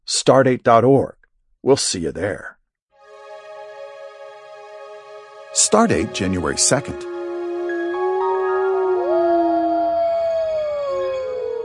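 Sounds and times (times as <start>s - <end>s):
speech: 0.1s - 2.6s, 5.6s - 7.2s
wolf howling: 6.4s - 11.6s.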